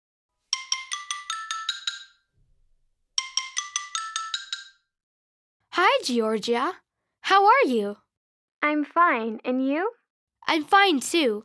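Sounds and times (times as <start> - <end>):
mobile phone ringing: 0.5 - 2.3, 3.2 - 5.0
speech: 5.9 - 8.0, 8.6 - 11.4.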